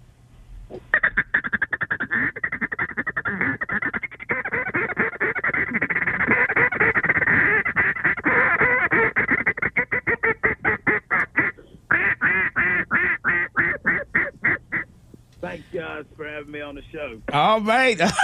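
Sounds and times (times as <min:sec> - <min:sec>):
person imitating a field full of ducks quacking and honking: 0:00.9 - 0:14.9
speech: 0:16.4 - 0:18.2.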